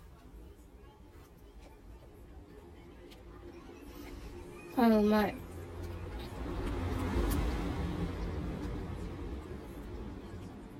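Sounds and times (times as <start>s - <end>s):
road traffic rumble heard from indoors through an open window: 2.6s - 10.7s
speech: 4.8s - 5.4s
vehicle passing: 5.3s - 10.7s.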